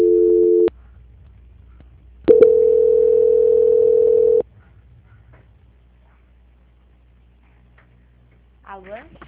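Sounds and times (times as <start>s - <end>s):
telephone tone during a call transfer: 0.0s - 0.7s, 2.3s - 4.4s.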